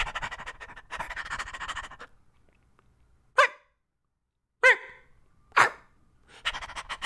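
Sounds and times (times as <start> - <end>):
person imitating dog panting in children's theater: 0.0 - 2.2, 5.6 - 7.0
person imitating dog barks in children's theater: 3.4 - 3.7, 4.6 - 5.9.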